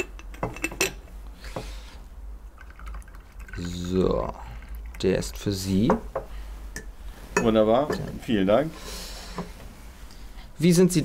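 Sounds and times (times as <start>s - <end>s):
glasses clinking: 0.0s - 1.0s, 5.9s - 8.1s
drink pouring into glasses: 2.5s - 6.0s
speech: 3.6s - 6.2s, 7.4s - 9.5s, 10.6s - 11.0s.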